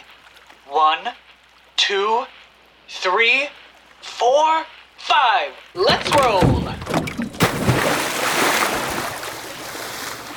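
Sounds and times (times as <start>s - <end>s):
speech: 0.7s - 1.3s, 1.9s - 7.0s
churning bubbling water: 5.8s - 10.3s
splash of divers rolling backwards off a boat into water: 6.9s - 10.3s.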